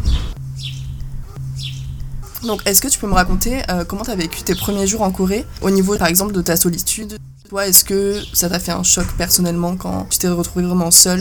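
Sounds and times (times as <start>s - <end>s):
small birds chirping outdoors: 0.0s - 11.2s
steady low hum: 0.9s - 11.2s
speech: 2.4s - 11.2s.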